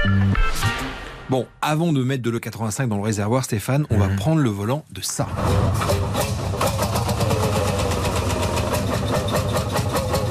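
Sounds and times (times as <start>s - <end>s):
speech: 1.3s - 6.4s
old tractor engine idling: 5.9s - 10.2s.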